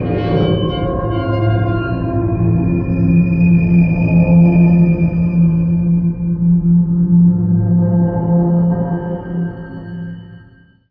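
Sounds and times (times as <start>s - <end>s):
industrial suspense music: 0.0s - 10.0s.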